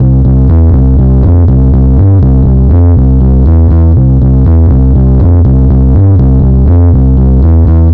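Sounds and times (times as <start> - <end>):
fret hop: 0.0 - 7.9.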